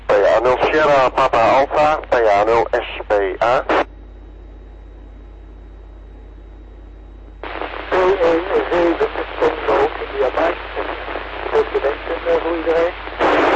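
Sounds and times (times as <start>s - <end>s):
steady hissing radio static: 0.0s - 3.9s, 7.4s - 13.5s
weak amateur radio voice breaking up: 0.0s - 3.9s, 7.4s - 13.5s
speech: 0.4s - 3.8s.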